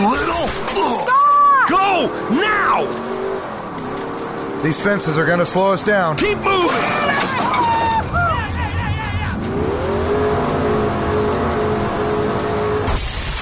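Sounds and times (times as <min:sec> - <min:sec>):
rain-like noise: 0:00.0 - 0:13.4
truck engine revving: 0:01.5 - 0:13.4
speech: 0:04.6 - 0:08.1.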